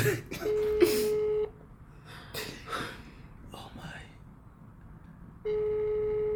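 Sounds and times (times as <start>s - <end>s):
speech: 0.0s - 0.6s
faint noise: 0.0s - 6.3s
phone line ringing tone: 0.5s - 1.5s, 5.5s - 6.3s.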